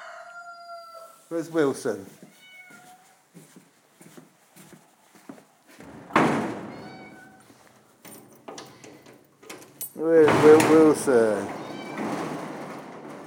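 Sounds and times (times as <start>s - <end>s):
speech: 1.3s - 2.2s, 10.7s - 11.5s
cat meowing: 2.3s - 3.2s, 6.7s - 7.5s, 11.6s - 12.1s.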